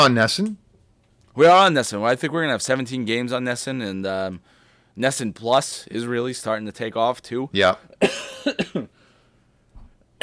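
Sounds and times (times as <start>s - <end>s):
speech: 0.0s - 0.6s, 1.4s - 9.0s
harsh coughs: 8.0s - 9.0s.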